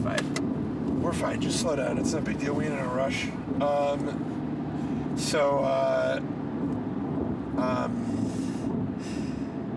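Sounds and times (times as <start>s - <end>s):
large trucks: 0.0s - 9.7s
road rumble from a vehicle moving through heavy traffic: 0.0s - 9.7s
speech: 1.1s - 4.4s, 5.2s - 6.4s, 7.6s - 8.4s.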